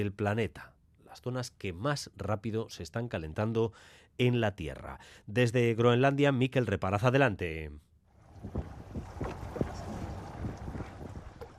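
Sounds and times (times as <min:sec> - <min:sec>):
speech: 0:00.0 - 0:08.7
motorboat engine rumble: 0:08.1 - 0:11.5
wind buffeting: 0:08.1 - 0:11.5
water splashing against the motorboat hull: 0:08.2 - 0:11.5.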